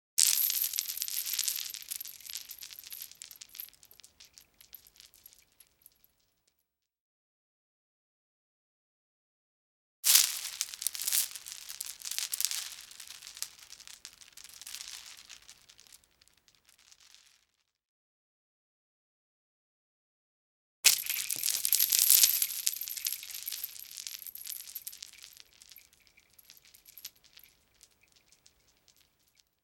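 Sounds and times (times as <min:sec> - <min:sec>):
beads scattering: 0:00.2 - 0:05.4, 0:10.1 - 0:17.3, 0:20.9 - 0:29.4.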